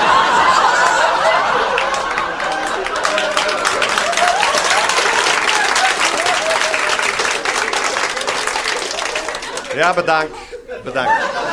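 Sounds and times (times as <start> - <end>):
audience applause: 0.0 - 10.3
scattered laughs: 0.0 - 11.5
speech: 9.8 - 11.5.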